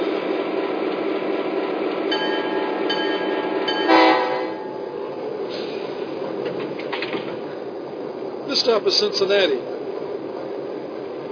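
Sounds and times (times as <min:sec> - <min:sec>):
passenger train rumbling: 0:00.0 - 0:11.3
passenger train horn blasts: 0:03.7 - 0:04.8
speech: 0:08.6 - 0:09.8.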